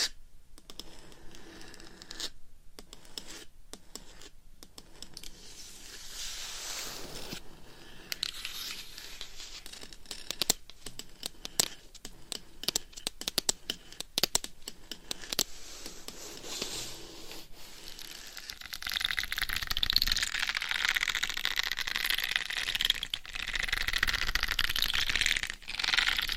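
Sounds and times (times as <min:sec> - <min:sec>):
nails scratching a microphone: 0:00.0 - 0:26.3
microphone cover rubbing against a microphone: 0:05.2 - 0:07.6, 0:15.4 - 0:18.4.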